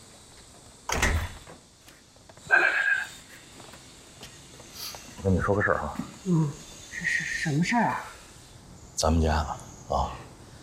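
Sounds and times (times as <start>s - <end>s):
hiss: 0.0s - 10.6s
door being closed at home: 0.9s - 1.6s
speech: 5.2s - 8.2s, 9.0s - 10.1s.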